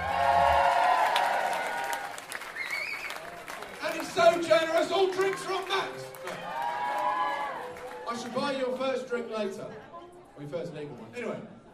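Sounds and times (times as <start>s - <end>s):
crowd cheering and applauding: 0.0s - 8.8s
whoops and whistles: 2.6s - 3.2s
speech: 4.4s - 6.6s, 8.1s - 11.6s.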